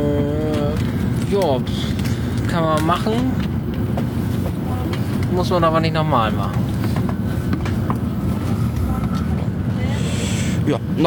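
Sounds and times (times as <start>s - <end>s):
moving train rumble heard from inside a carriage: 0.0s - 11.0s
voices: 0.0s - 11.0s
speech: 1.3s - 4.1s, 5.3s - 6.6s, 10.7s - 11.0s.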